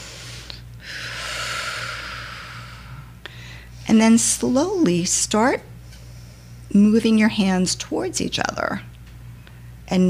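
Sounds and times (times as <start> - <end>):
deep breathing: 0.0 - 3.9
speech: 3.9 - 5.7, 6.7 - 8.9.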